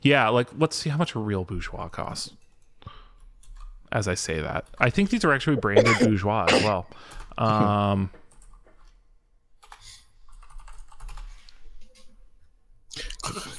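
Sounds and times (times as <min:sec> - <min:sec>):
speech: 0:00.0 - 0:02.4, 0:03.9 - 0:08.2
typing on a loud mechanical keyboard: 0:09.6 - 0:11.4.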